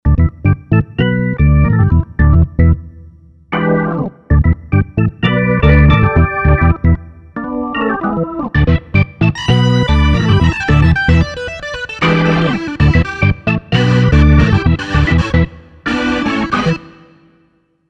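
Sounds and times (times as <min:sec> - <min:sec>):
Roland VK 8M organ module: 0:00.1 - 0:17.5.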